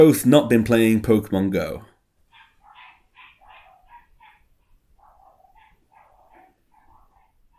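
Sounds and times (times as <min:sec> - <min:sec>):
speech: 0:00.0 - 0:01.9
dogs barking outside in sharp yaps: 0:02.3 - 0:07.5.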